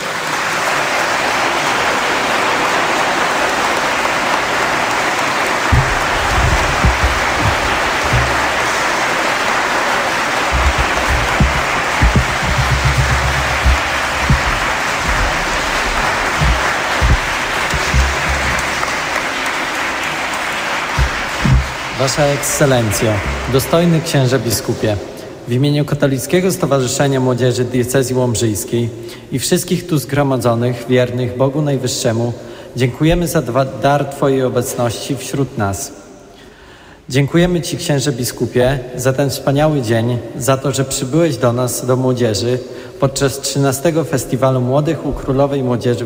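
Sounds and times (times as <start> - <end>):
large crowd applauding: 0.0 - 24.7
speech: 22.0 - 36.0, 37.1 - 46.0.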